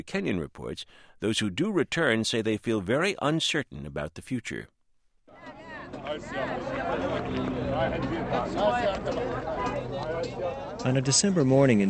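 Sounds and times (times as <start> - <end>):
speech: 0.0 - 4.8, 6.1 - 11.8
crowd of taxi drivers calling out in Baghdad: 5.3 - 10.8
bus loaded with refugees pulling up: 5.4 - 11.5.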